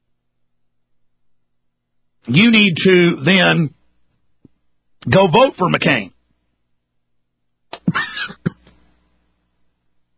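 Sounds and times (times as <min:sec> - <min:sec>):
speech: 0:02.3 - 0:03.8, 0:05.0 - 0:06.1
broadcaster coughing harshly on air while eating a sandwich: 0:07.8 - 0:08.7.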